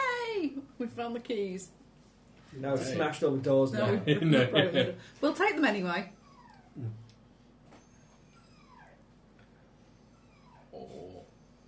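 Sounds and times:
speech: 0:00.8 - 0:01.8, 0:02.5 - 0:06.2, 0:06.8 - 0:07.0
dog shut in a kitchen whining: 0:06.0 - 0:07.0, 0:07.7 - 0:09.2, 0:09.8 - 0:11.6.

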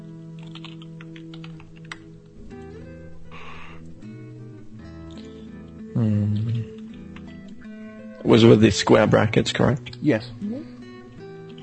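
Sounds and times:
typing on a computer keyboard: 0:00.4 - 0:02.0
speech: 0:06.0 - 0:06.7, 0:08.3 - 0:10.4.

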